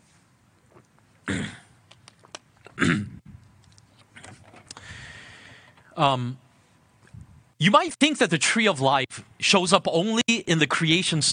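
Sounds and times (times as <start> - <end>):
person with a dry throat clearing it with coughs: 1.2 - 1.8, 2.7 - 3.2
speech: 6.0 - 6.4, 7.6 - 11.3.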